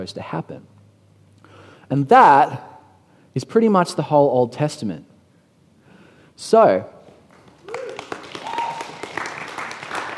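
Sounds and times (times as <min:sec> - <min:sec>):
speech: 0:00.0 - 0:00.8, 0:01.9 - 0:02.7, 0:03.4 - 0:05.1, 0:06.4 - 0:07.0
crowd applauding: 0:07.3 - 0:10.1.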